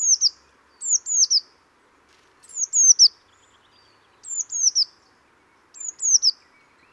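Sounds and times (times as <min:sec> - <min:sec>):
Eurasian blue tit Cyanistes caeruleus high thin descending calls: 0:00.0 - 0:01.5, 0:02.4 - 0:05.0, 0:05.7 - 0:06.9
faint steady background hiss: 0:00.0 - 0:06.9.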